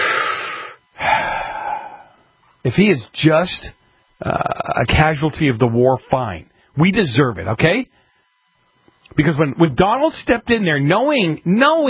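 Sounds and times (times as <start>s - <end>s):
person taking a breath: 0.0s - 2.2s
speech: 2.6s - 8.0s, 9.1s - 11.8s.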